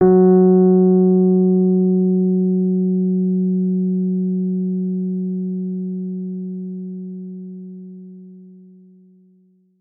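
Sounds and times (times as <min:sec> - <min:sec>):
Rhodes electric piano note F sharp 3 played forte: 0:00.0 - 0:07.6.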